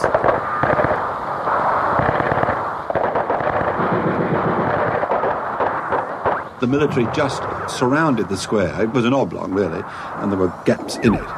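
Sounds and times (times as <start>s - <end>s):
dense continuous gunfire in a city square: 0.0s - 7.3s
speech: 6.6s - 11.3s.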